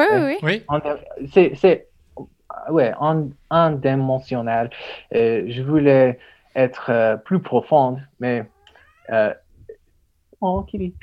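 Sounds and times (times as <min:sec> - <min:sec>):
speech: 0:00.0 - 0:08.5, 0:09.1 - 0:09.4, 0:10.4 - 0:11.0
cat meowing: 0:08.4 - 0:09.2.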